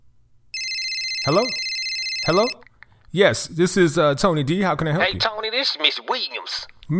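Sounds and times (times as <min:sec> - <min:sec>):
telephone ringing with an electronic trill: 0:00.5 - 0:02.7
speech: 0:01.2 - 0:06.9.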